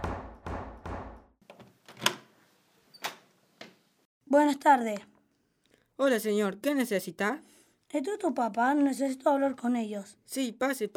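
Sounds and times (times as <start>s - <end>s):
knocking on the wooden door of a family house: 0.0s - 1.2s
speech: 4.3s - 5.1s, 6.0s - 10.9s.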